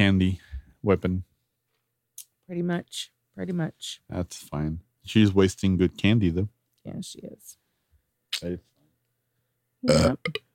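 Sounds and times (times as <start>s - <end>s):
speech: 0.0s - 1.3s, 2.5s - 7.6s, 8.3s - 8.7s, 9.8s - 10.5s
person burping: 9.8s - 10.5s.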